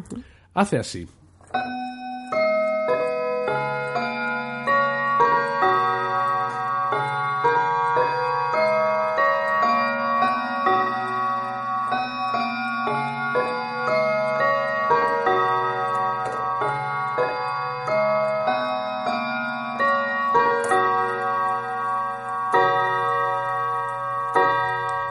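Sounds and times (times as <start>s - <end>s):
speech: 0.0s - 1.8s
quarter chimes from a Victorian domestic clock: 1.5s - 25.1s.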